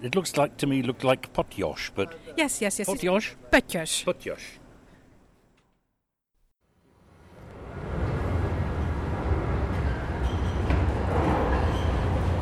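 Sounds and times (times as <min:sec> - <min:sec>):
speech: 0:00.0 - 0:04.6
underground metro train rumbling: 0:07.0 - 0:12.3
high squeal: 0:09.7 - 0:12.2.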